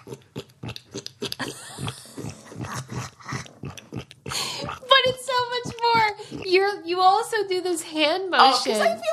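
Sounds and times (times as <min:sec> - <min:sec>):
person imitating a pig with snorting grunts and squeals: 0:00.0 - 0:06.8
speech: 0:06.9 - 0:09.1.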